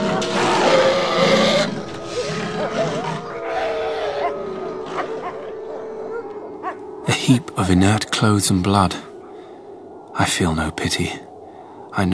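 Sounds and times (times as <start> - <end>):
wolves snarling and attacking: 0.0 - 7.8
speech: 7.3 - 9.1, 10.2 - 11.3, 11.9 - 12.1.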